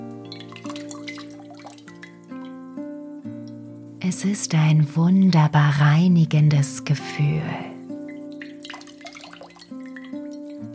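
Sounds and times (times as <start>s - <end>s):
water scooped and splashed: 0.0s - 2.4s, 8.3s - 10.7s
water dripping and trickling: 0.0s - 3.7s, 8.1s - 10.7s
speech: 4.0s - 7.7s.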